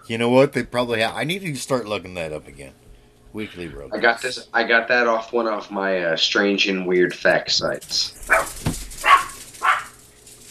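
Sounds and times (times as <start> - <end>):
speech: 0.1 - 8.6
dog yapping: 8.2 - 10.0.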